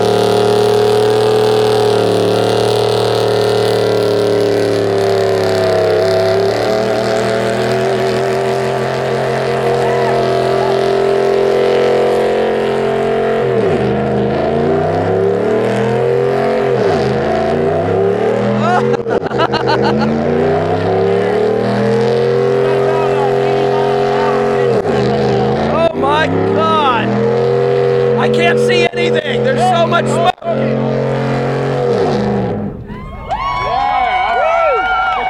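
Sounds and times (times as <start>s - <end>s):
car engine roaring through a burnout with burnout spray: 0.0s - 35.2s
laughter: 18.6s - 20.5s.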